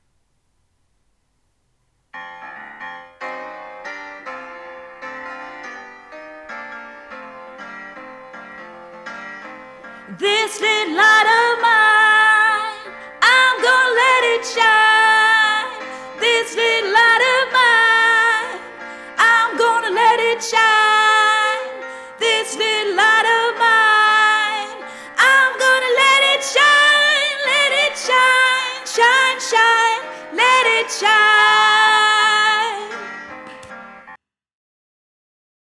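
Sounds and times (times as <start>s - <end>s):
soprano singing: 10.1s - 33.4s.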